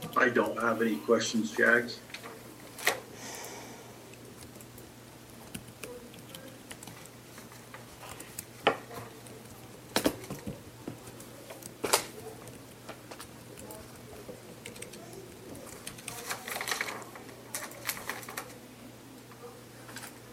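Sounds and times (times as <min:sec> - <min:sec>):
low electrical hum: 0:00.0 - 0:20.3
speech: 0:00.2 - 0:02.1
typing on a computer keyboard: 0:04.1 - 0:07.2, 0:08.1 - 0:18.6.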